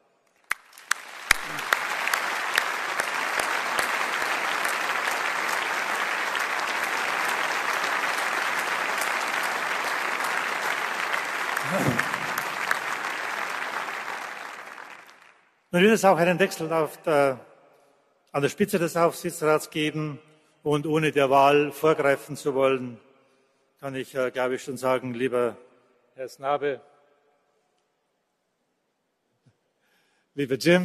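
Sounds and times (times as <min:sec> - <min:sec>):
sharp individual claps: 0:00.4 - 0:15.4
audience applause in tribute to a person being thanked: 0:00.5 - 0:15.4
speech: 0:15.8 - 0:17.5, 0:18.3 - 0:23.1, 0:23.8 - 0:26.9, 0:30.4 - 0:30.8.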